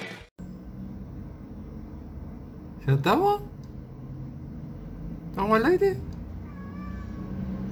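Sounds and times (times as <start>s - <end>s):
speech: 2.9s - 3.6s, 5.4s - 6.1s
cat meowing: 6.4s - 7.6s.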